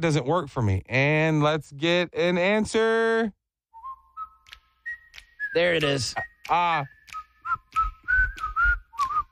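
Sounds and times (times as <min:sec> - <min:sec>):
speech: 0:00.0 - 0:03.4, 0:05.5 - 0:07.0
person whistling a short wavering tune: 0:03.7 - 0:09.2.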